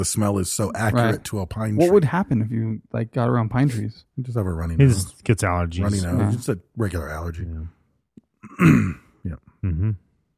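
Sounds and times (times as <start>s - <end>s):
speech: 0.0s - 7.8s, 8.5s - 10.0s
raspy throat clearing: 8.4s - 10.0s
short quiet coughs: 8.5s - 9.0s.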